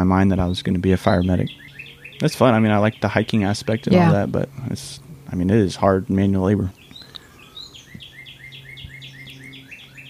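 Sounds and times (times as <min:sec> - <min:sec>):
speech: 0:00.0 - 0:06.8
birds twittering outdoors: 0:00.0 - 0:10.0
low steady hum: 0:00.0 - 0:10.0.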